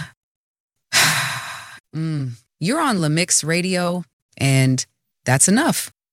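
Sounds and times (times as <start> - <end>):
person taking a deep breath: 0.9 - 1.9
speech: 1.9 - 6.0.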